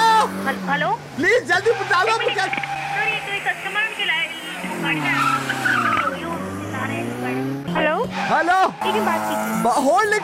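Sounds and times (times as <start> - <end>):
tires squealing as an out-of-control car skids: 0.0 - 10.2
speech: 0.5 - 5.8, 7.0 - 10.2.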